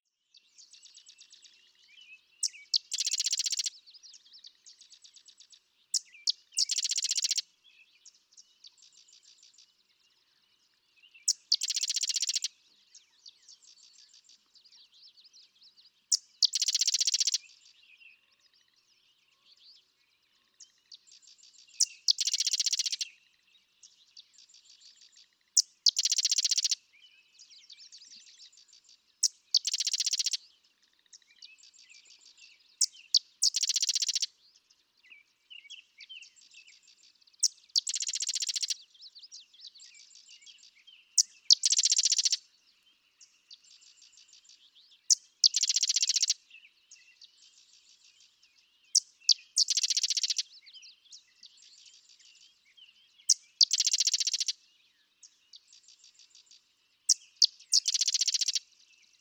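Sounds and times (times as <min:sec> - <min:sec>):
Sedge Wren calling: 0:02.4 - 0:03.7, 0:04.4 - 0:07.5, 0:11.2 - 0:12.5, 0:16.1 - 0:17.6, 0:21.2 - 0:23.0, 0:24.5 - 0:26.8, 0:29.2 - 0:34.3, 0:37.4 - 0:38.8, 0:41.2 - 0:42.4, 0:43.8 - 0:46.4, 0:48.9 - 0:50.6, 0:53.2 - 0:54.6, 0:55.5 - 0:58.6.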